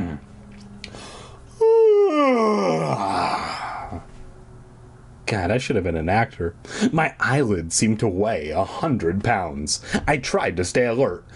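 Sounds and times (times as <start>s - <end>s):
faint hum: 0.0s - 11.3s
loud exaggerated yawn: 1.0s - 4.1s
speech: 5.3s - 11.3s.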